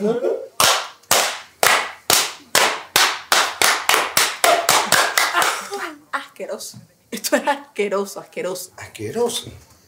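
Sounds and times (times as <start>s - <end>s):
speech: 0.0s - 0.4s, 6.4s - 9.7s
sharp loud hand claps: 0.6s - 5.7s.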